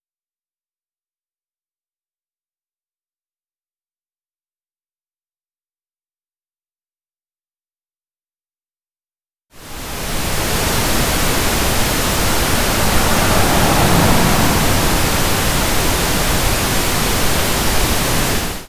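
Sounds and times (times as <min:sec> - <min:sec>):
car passing unattenuated: 0:09.6 - 0:18.6.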